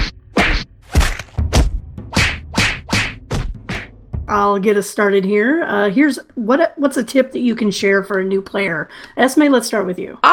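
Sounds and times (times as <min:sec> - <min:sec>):
fist punching a tree: 0:00.0 - 0:04.0
speech: 0:04.3 - 0:10.3.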